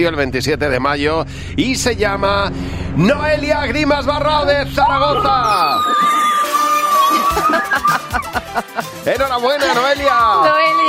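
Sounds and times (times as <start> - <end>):
speech: 0.0 - 10.8
group of people shouting and cheering loudly: 4.8 - 8.6, 9.7 - 10.8
laughter: 4.9 - 10.1.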